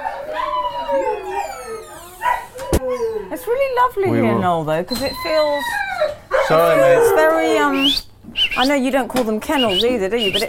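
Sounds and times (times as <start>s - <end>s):
dog yelp: 0.0s - 3.4s, 5.0s - 7.7s
dogs recovering in a veterinary ward howling: 0.0s - 7.9s
speech: 3.7s - 10.4s.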